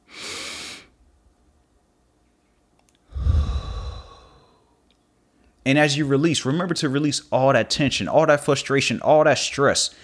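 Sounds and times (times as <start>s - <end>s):
deep breath in and out during a guided relaxation exercise: 3.1s - 4.8s
speech: 5.6s - 10.0s.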